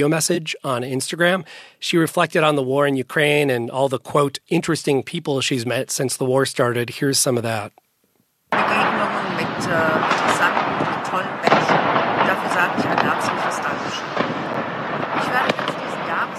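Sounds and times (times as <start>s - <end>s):
speech: 0.0s - 7.8s, 9.6s - 11.5s
New Year's Eve fireworks cracking and booming: 8.5s - 16.3s.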